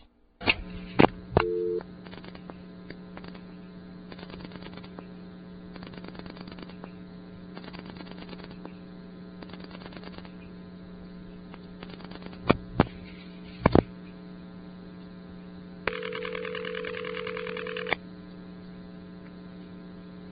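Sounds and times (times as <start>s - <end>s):
steady electrical hum: 0.0s - 20.2s
buzzy harmonic-rich telephone ring tone in a crossbar switch: 15.9s - 18.0s.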